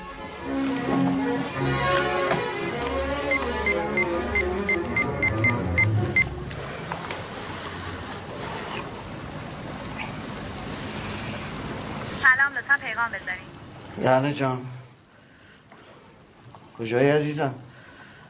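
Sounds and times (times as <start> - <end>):
hiss: 0.0 - 18.2
touch-tone telephone dialing beeps at home: 3.3 - 6.3
speech: 13.1 - 14.7, 16.8 - 17.6.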